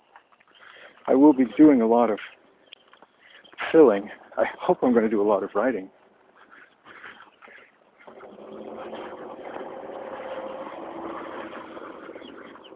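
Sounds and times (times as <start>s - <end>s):
speech: 1.1s - 2.4s, 3.7s - 6.0s
four-wheeled mobility scooter motor whir: 8.0s - 12.7s.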